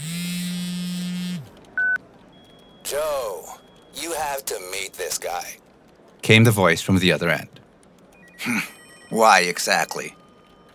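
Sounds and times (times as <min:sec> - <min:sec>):
phone in an office in Hong Kong buzzing with an incoming call: 0:00.0 - 0:02.0, 0:02.9 - 0:05.6
speech: 0:02.8 - 0:05.6, 0:06.2 - 0:07.6, 0:08.4 - 0:10.2.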